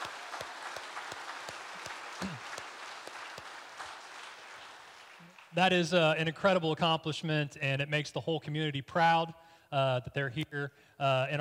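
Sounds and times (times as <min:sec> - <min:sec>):
audience applause: 0:00.0 - 0:06.0
speech: 0:05.6 - 0:11.4.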